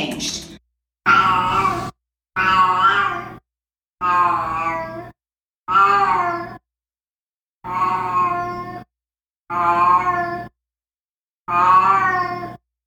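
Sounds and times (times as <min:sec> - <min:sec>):
cat's low throaty meows: 0:01.1 - 0:03.4, 0:04.0 - 0:05.1, 0:05.7 - 0:06.6, 0:07.7 - 0:08.8, 0:09.5 - 0:10.5, 0:11.5 - 0:12.6.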